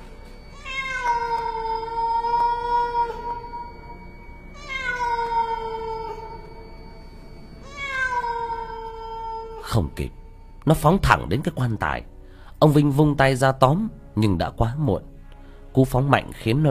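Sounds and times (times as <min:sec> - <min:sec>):
cat wailing mournfully: 0:00.4 - 0:10.6
speech: 0:09.8 - 0:15.1, 0:15.7 - 0:16.6.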